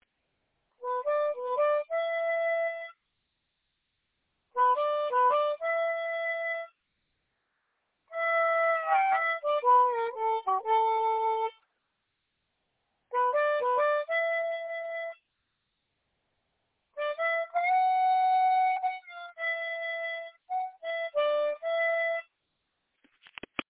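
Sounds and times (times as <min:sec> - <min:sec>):
simple minor blues music: 0:00.8 - 0:02.9, 0:04.6 - 0:06.7, 0:08.1 - 0:11.6, 0:13.1 - 0:15.2, 0:17.0 - 0:22.2.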